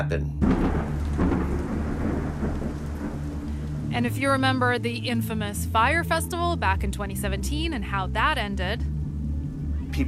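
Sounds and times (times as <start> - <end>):
speech: 0.0 - 1.4, 3.9 - 8.9
steady rain in a summer thunderstorm in Central Florida: 0.4 - 5.3
deep sustained thunder rumble: 0.4 - 10.0.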